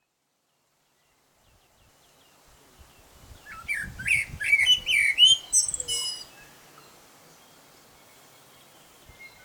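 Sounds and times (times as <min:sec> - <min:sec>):
male common blackbird singing: 0:03.5 - 0:06.9.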